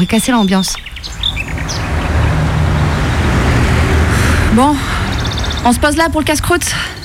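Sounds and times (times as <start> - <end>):
speech: 0.0 - 1.8, 4.6 - 5.0, 5.6 - 7.0
bird chirps: 0.0 - 3.5, 4.9 - 6.1
vehicle rumbling past on a road: 0.8 - 7.0.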